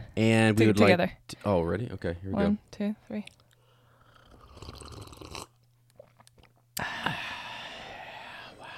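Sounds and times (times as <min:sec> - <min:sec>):
speech: 0:00.2 - 0:03.4
people slurping hot coffee: 0:04.0 - 0:06.5.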